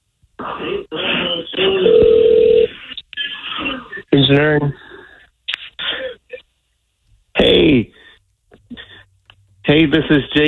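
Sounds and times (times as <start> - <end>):
speech: 0.4 - 2.3, 4.1 - 4.8, 9.7 - 10.4
steady ringback tone over a phone line: 1.8 - 2.7.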